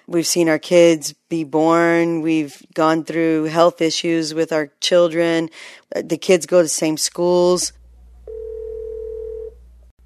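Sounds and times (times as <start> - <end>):
speech: 0.1 - 7.8
faint low rumble: 7.7 - 10.0
steady telephone dial tone on a call: 8.3 - 9.6.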